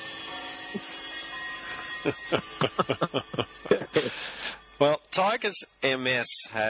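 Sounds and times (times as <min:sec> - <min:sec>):
alarm played on air beeping: 0:00.0 - 0:06.6
laughter: 0:02.0 - 0:04.4
speech: 0:02.0 - 0:06.6.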